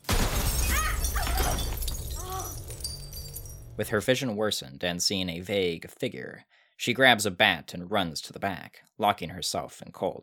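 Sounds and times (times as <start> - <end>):
crackling spray of breaking glass shards: 0.0 - 3.8
glass light in a diner shattering: 0.0 - 3.8
speech: 3.8 - 10.2.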